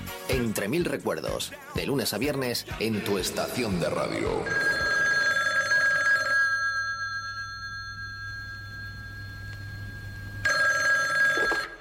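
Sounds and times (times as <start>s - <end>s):
speech: 0.4s - 4.9s
telephone bell ringing in a song: 4.5s - 11.7s.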